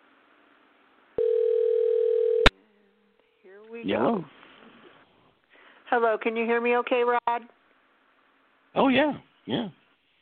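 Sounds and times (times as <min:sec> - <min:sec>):
telephone dialing tone: 0:01.2 - 0:02.5
speech: 0:03.8 - 0:04.4, 0:05.9 - 0:07.6, 0:08.7 - 0:09.8.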